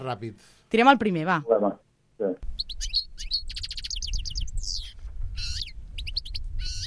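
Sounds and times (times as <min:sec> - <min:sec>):
speech: 0:00.0 - 0:03.0
European goldfinch singing: 0:02.6 - 0:06.8.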